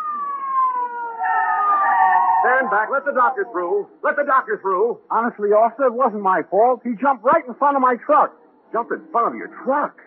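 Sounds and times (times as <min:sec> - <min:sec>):
ambulance siren wailing at a street corner: 0:00.0 - 0:04.6
speech: 0:02.4 - 0:10.0.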